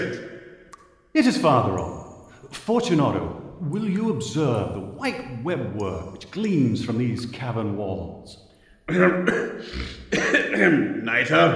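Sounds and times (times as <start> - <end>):
speech: 1.2 - 11.5
person coughing in damp catacombs with nitre-covered walls: 8.9 - 11.0.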